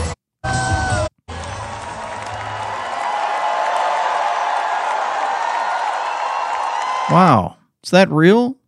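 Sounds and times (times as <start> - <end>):
large crowd screaming and cheering: 0.4 - 7.2
speech: 7.1 - 8.6.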